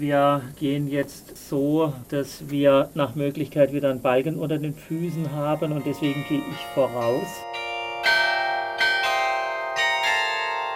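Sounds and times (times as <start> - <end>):
speech: 0.0 - 7.5
large bells ringing in a bell tower: 4.9 - 10.7.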